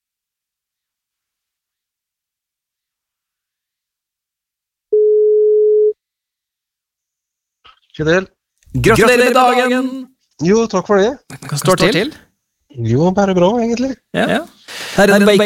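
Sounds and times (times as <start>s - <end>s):
telephone ringback tone: 4.9s - 6.0s
speech: 8.0s - 15.4s.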